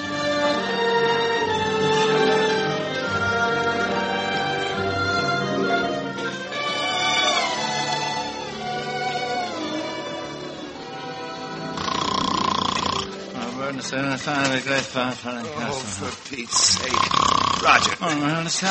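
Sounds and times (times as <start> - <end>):
brief musical passage: 0.0 - 14.8
man snoring loudly: 11.7 - 13.2, 16.5 - 18.0
speech: 14.2 - 18.6.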